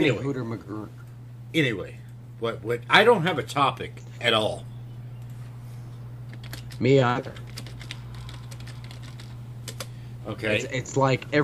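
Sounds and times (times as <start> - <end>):
speech: 0.0 - 4.7, 6.8 - 7.5, 10.3 - 11.4
steady low electrical hum: 0.0 - 11.4
typing on a computer keyboard: 6.3 - 9.9.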